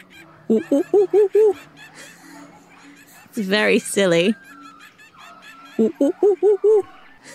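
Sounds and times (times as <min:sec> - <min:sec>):
voice imitating monkey sounds with lips pushed out: 0:00.0 - 0:01.7, 0:04.4 - 0:07.3
laughter: 0:00.0 - 0:07.3
speech: 0:00.5 - 0:01.8, 0:03.4 - 0:04.4, 0:05.8 - 0:07.3.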